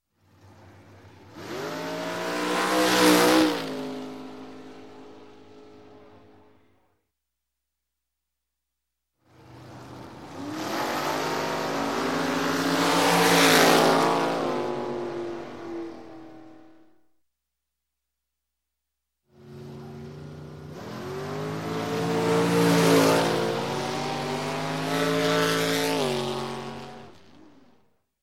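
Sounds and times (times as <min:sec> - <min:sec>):
dragster racing by: 0:00.2 - 0:06.6, 0:09.3 - 0:16.9, 0:19.4 - 0:27.8.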